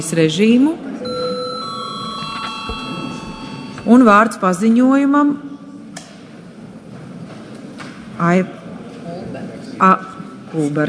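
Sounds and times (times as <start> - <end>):
speech: 0.0 - 0.9, 3.8 - 5.5, 8.2 - 8.6, 9.8 - 10.8
electric bell ringing in a parliament chamber to announce a session break: 1.0 - 5.1.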